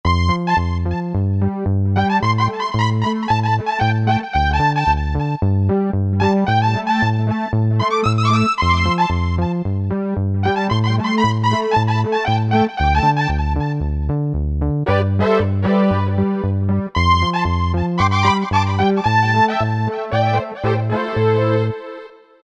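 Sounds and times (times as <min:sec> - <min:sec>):
synthesizer bass lead factory patch: 0:00.0 - 0:21.8.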